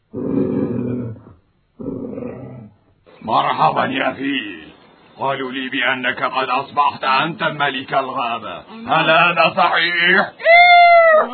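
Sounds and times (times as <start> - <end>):
lion roaring: 0.1 - 2.8
speech: 3.3 - 4.6, 5.2 - 11.3.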